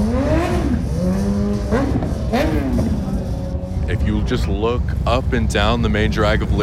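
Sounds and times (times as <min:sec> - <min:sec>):
motorcycles roaring along a busy street: 0:00.0 - 0:06.6
steady loud street noise: 0:00.0 - 0:06.6
speech: 0:04.3 - 0:06.6.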